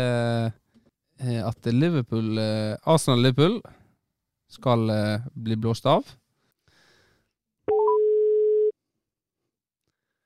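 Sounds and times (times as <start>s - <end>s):
speech: 1.2s - 3.8s, 4.5s - 6.2s
electronic telephone tone of an outgoing call: 7.7s - 8.7s.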